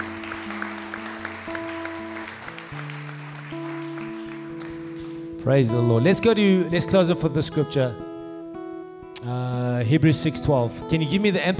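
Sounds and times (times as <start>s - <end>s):
audience applause: 0.0s - 5.4s
speech: 5.4s - 8.0s, 9.3s - 11.5s.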